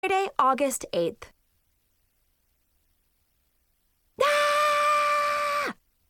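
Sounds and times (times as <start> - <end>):
speech: 0.1 - 1.3
person screaming in frustration: 4.2 - 5.8.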